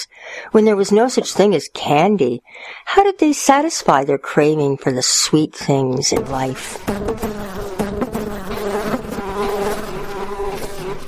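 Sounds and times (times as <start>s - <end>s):
speech: 0.5s - 7.7s
bees buzzing around a beehive: 6.2s - 11.0s.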